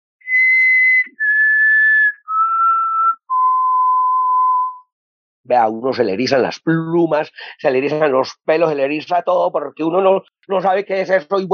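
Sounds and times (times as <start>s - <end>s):
person whistling imitation of common potoo night call: 0.2s - 4.9s
speech: 5.5s - 11.5s.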